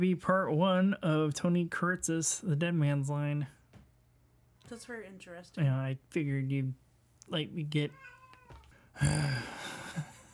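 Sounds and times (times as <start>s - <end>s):
speech: 0.0s - 3.6s, 4.7s - 8.2s, 9.0s - 10.1s
shop cat meowing with a drawn-out nasal meow: 7.9s - 8.7s.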